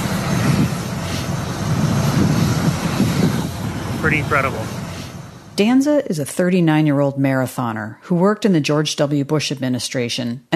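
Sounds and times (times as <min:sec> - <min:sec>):
jet plane engines roaring on the tarmac: 0:00.0 - 0:07.0
speech: 0:04.1 - 0:04.8, 0:05.6 - 0:10.5.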